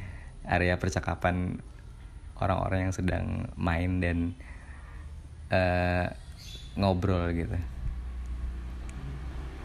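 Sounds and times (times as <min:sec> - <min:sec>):
motorcycle engine rumbling on a nearby street: 0:00.0 - 0:09.6
speech: 0:00.4 - 0:01.8, 0:02.4 - 0:04.6, 0:05.5 - 0:07.8.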